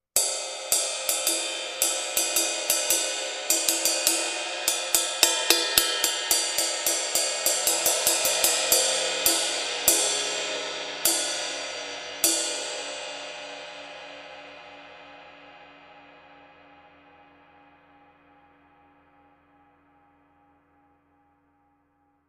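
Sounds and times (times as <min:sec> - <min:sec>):
20 inch brilliant heavy dry ride cymbal: 0:00.2 - 0:14.4.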